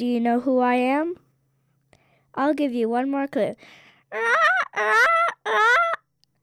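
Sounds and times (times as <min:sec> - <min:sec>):
speech: 0:00.0 - 0:01.2, 0:02.4 - 0:06.0
peacock giving loud piercing calls: 0:04.1 - 0:06.0.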